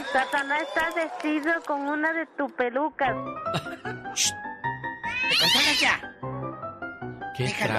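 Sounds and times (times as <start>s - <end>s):
speech: 0.1s - 4.5s, 5.3s - 6.2s, 7.4s - 7.7s
cat meowing: 5.0s - 6.1s.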